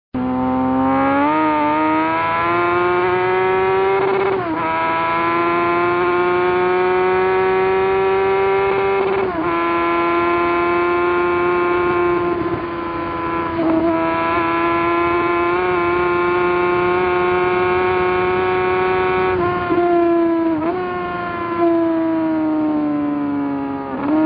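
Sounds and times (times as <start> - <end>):
Honda CBR900RR motorcycle engine: 0.2 - 24.2.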